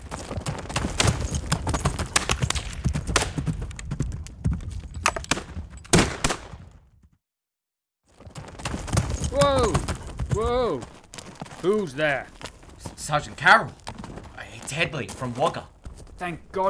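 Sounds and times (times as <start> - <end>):
steady clatter of galloping hooves: 0.0 - 7.2, 8.1 - 16.6
sharp loud gunshots: 0.5 - 3.6, 5.0 - 6.8
speech: 11.6 - 12.4, 13.1 - 13.8, 14.7 - 16.6.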